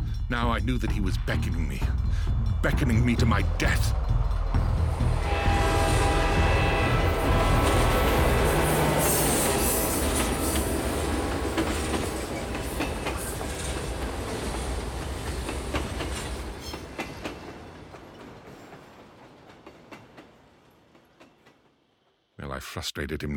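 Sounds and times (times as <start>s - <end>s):
train rumbling past: 0.0s - 22.3s
speech: 0.3s - 4.1s, 22.8s - 23.3s
train whistle: 5.2s - 10.8s.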